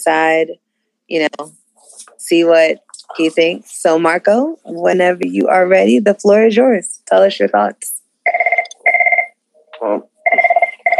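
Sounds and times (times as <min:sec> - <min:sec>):
speech: 0:00.0 - 0:08.4, 0:09.8 - 0:10.4
telephone ringing with an incoming call: 0:08.2 - 0:09.3, 0:10.2 - 0:10.9.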